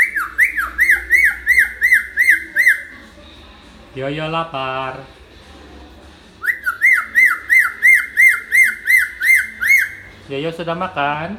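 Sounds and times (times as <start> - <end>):
Hill myna whistling: 0.0 - 3.0, 6.4 - 10.2
speech: 4.0 - 5.2, 10.3 - 11.3.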